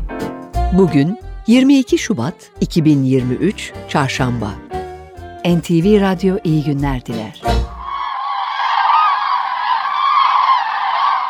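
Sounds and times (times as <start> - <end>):
speech: 0.7 - 4.6, 5.4 - 7.6
chorus of cranes honking and trumpeting: 7.7 - 11.2.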